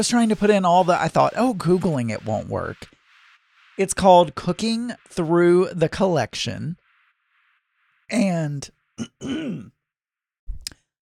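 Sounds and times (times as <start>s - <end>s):
speech: 0.0s - 3.0s, 3.8s - 6.8s, 8.1s - 9.8s
throat clearing from phlegm: 9.0s - 9.7s.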